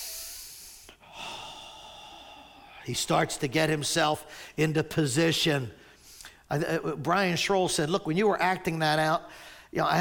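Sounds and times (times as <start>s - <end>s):
person imitating heavy breathing: 0.0s - 2.9s, 4.2s - 4.6s, 9.3s - 9.7s
speech: 2.8s - 5.8s, 6.5s - 9.9s.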